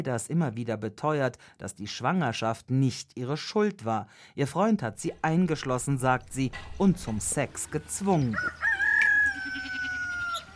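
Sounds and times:
speech: 0.0s - 8.7s
faint farmyard ambience: 5.2s - 10.5s
rooster crowing: 8.2s - 10.5s.

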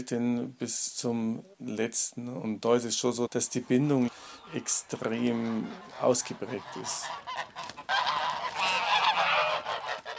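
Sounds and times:
speech: 0.0s - 7.6s
geese honking: 3.0s - 10.1s.

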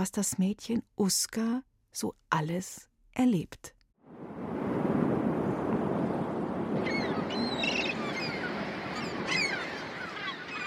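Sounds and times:
speech: 0.0s - 3.8s
strong wind roaring: 4.0s - 10.6s
crashing sea surf: 4.1s - 10.6s
faint bird cries: 6.8s - 10.6s.

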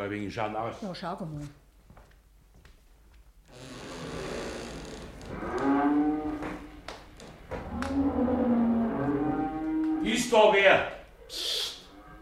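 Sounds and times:
speech: 0.1s - 1.6s, 10.1s - 11.6s
cattle mooing inside a stable: 5.3s - 6.7s, 7.6s - 10.2s, 11.8s - 12.2s.

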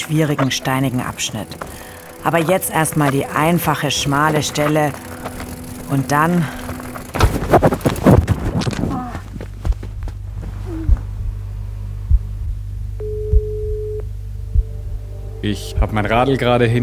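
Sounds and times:
speech: 0.1s - 6.6s, 15.5s - 16.8s
rustling: 4.5s - 11.3s
mobile phone vibrating in a trouser pocket: 10.3s - 15.2s
mobile phone electronic ring tone: 13.0s - 14.0s.

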